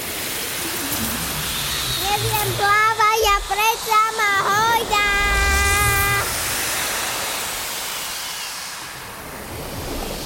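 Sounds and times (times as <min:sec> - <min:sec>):
murmuring sea waves and surf: 0:00.0 - 0:07.4
speech: 0:02.2 - 0:05.4.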